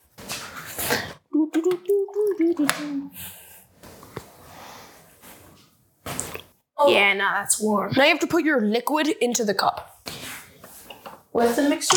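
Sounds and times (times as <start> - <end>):
cold tap water running into a container: 1.6 - 3.1
speech: 2.4 - 3.4, 6.8 - 10.0, 11.4 - 11.9.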